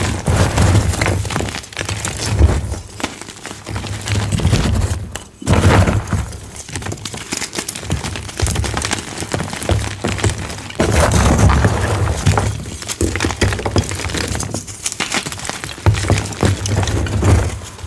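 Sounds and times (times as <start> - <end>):
deep blue dyed gym chalk blocks crushing: 0.0 - 17.8.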